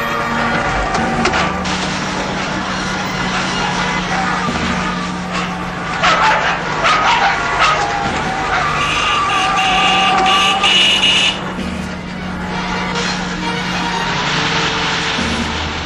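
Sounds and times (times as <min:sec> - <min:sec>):
truck engine droning while driving along a road: 0:00.0 - 0:15.8.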